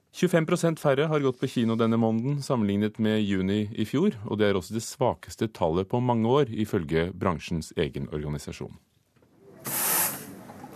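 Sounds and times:
speech: 0.2s - 8.9s
coffee machine steam wand hissing: 9.6s - 10.7s.

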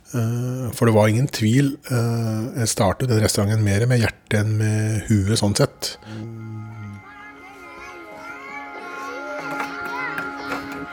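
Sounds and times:
speech: 0.1s - 6.8s
children chattering and calling out while playing at a playground in Brumunddal: 6.3s - 10.9s.

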